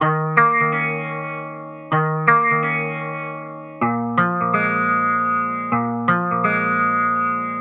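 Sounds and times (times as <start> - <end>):
funky music in E flat and B flat: 0.0 - 7.5.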